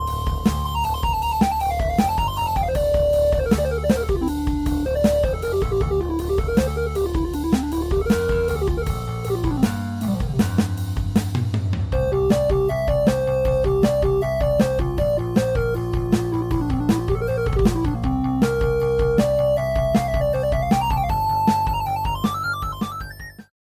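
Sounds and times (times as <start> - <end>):
soft lead: 0.0 - 23.1.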